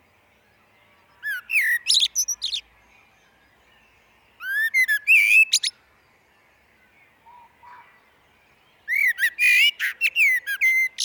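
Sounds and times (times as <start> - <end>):
common blackbird singing in a glen: 0.4 - 5.8, 6.6 - 11.0.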